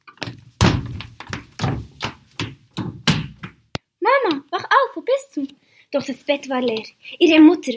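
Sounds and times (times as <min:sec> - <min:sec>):
quick footsteps going up wooden stairs: 0:00.1 - 0:03.7
speech: 0:05.0 - 0:07.7.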